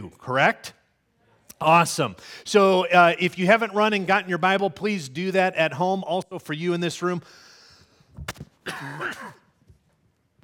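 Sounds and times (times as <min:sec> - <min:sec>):
speech: 0:00.1 - 0:00.8, 0:01.6 - 0:07.5, 0:08.2 - 0:09.4
raspy throat clearing: 0:08.6 - 0:09.6.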